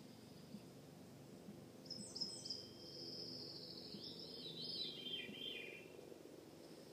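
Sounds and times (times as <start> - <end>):
soft rumbling background hum: 0.0 - 6.9
veery song: 1.8 - 6.0.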